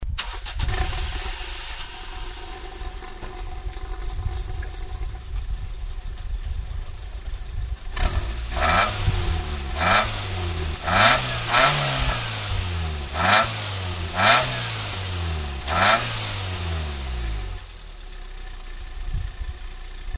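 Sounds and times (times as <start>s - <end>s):
car exhaust through a muffler: 0.0s - 20.1s.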